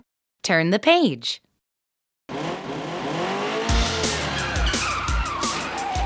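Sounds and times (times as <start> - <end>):
speech: 0.5 - 1.5
car engine revving loudly: 2.3 - 4.5
car tires skidding and squealing: 2.3 - 6.0.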